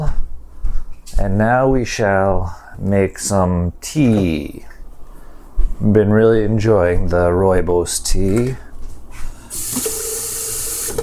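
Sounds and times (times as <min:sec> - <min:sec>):
speech: 0:01.2 - 0:04.7, 0:05.8 - 0:08.6
tap water running from a sink faucet: 0:09.5 - 0:11.0.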